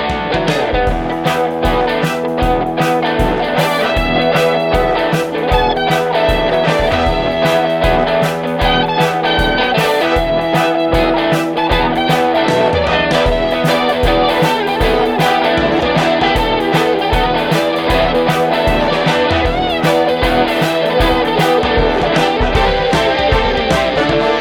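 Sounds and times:
energetic podcast jingle with punchy drum hits and bright instrumentation: 0.2 - 24.3.

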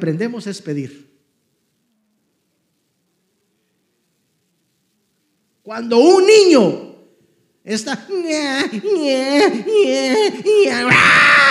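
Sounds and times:
speech: 0.0 - 1.1, 5.7 - 6.9, 7.6 - 11.5
adult voice imitating a baby's screaming wail: 8.8 - 11.5.

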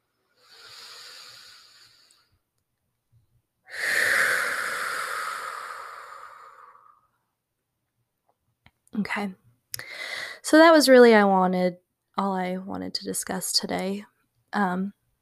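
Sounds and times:
deep cleansing breath: 0.3 - 2.4, 3.7 - 7.2, 9.8 - 10.4
speech: 9.0 - 9.4, 10.5 - 15.0.

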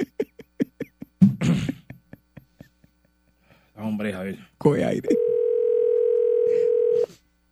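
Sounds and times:
speech: 4.0 - 5.3
telephone ringing tone: 5.1 - 7.1.

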